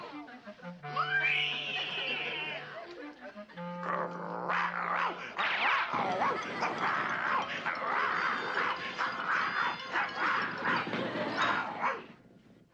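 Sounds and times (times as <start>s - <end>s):
laughter: 0.9s - 3.7s, 5.0s - 12.0s
dog barking and yapping frantically: 4.5s - 12.1s.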